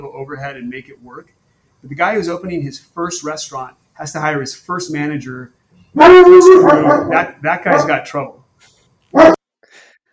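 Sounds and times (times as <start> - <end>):
speech: 0.0 - 9.9
large dog barking in an office: 6.0 - 8.1, 9.1 - 9.4.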